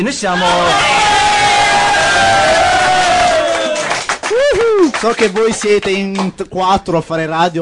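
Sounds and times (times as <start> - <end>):
speech: 0.0 - 1.2, 5.0 - 7.6
loud crowd cheering and whooping: 0.4 - 5.1
dense clapping-like crowd noise: 0.4 - 6.4.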